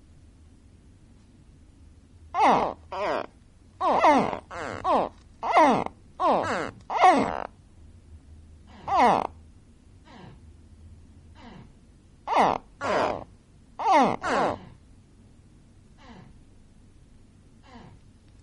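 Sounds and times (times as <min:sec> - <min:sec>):
gharial giving falling harmonic grunts: 0:02.3 - 0:07.5, 0:08.8 - 0:09.4, 0:12.3 - 0:14.7.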